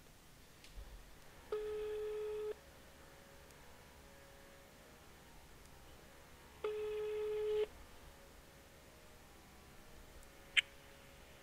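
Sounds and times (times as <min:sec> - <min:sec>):
low hiss: 0:00.0 - 0:11.4
telephone ringback tone while placing a call: 0:06.7 - 0:07.7.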